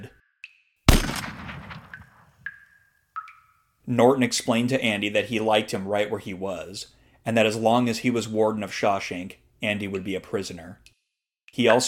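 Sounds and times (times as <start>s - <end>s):
single sharp gunshot: 0.9s - 2.4s
speech: 3.9s - 10.9s, 11.5s - 11.8s.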